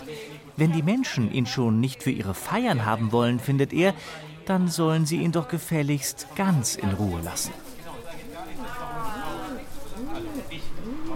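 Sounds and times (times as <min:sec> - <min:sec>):
speech: 0:00.1 - 0:07.7
pigeon cooing: 0:09.3 - 0:11.1.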